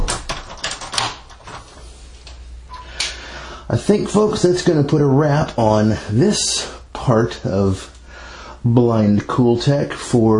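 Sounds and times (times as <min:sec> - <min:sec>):
door being shut and locked: 0:00.0 - 0:01.6
speech: 0:03.7 - 0:07.9, 0:08.6 - 0:10.3.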